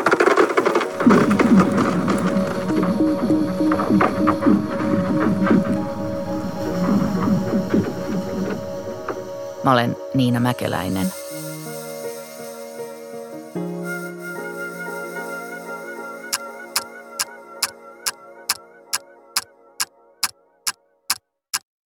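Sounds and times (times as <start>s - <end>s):
sustained musical tones: 0.9s - 11.1s
speech: 9.6s - 11.2s.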